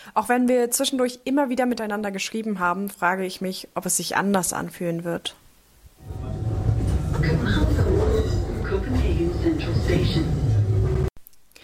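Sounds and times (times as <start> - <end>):
speech: 0.0 - 5.4, 8.8 - 10.4
S-Bahn commuter train in motion rumbling: 6.0 - 11.1.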